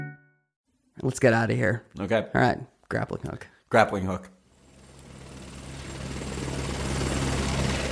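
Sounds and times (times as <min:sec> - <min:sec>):
speech: 0:01.0 - 0:04.4
helicopter rotor thrum and engine whine: 0:04.4 - 0:07.9.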